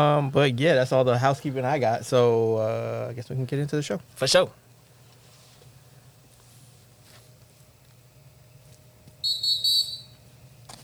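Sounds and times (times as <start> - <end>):
speech: 0.0 - 4.7
quiet hum: 0.0 - 10.8
referee whistle: 9.2 - 10.2.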